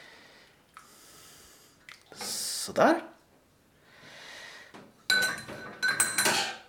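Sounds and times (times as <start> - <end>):
speech: 2.2 - 3.1
metal tea strainer clinking and scraping against metal saucepan: 5.1 - 6.6.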